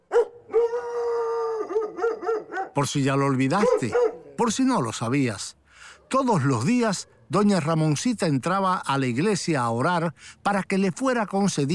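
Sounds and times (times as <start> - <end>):
enormous white-furred dog howling: 0.1 - 2.8
speech: 2.8 - 11.7.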